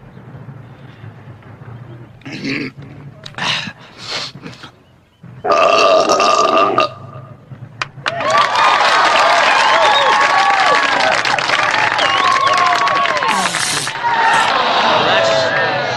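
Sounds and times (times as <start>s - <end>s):
people talking and shouting: 0.0s - 15.9s
long loud rumbling belch in a belching contest: 5.4s - 7.3s
roaring crowd cheering and applauding: 7.8s - 15.9s.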